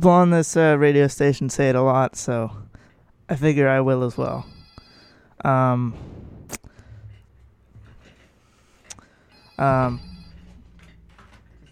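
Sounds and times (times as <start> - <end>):
speech: 0.0 - 2.6, 3.3 - 4.6, 5.4 - 6.1, 9.6 - 10.1
telephone ringing with bright trill: 4.1 - 5.3, 9.3 - 11.5.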